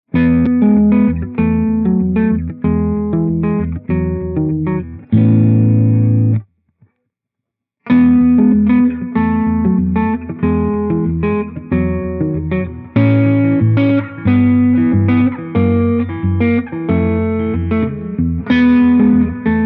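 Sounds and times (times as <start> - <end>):
electric guitar with spring reverb: 0.1 - 6.5, 7.9 - 19.6.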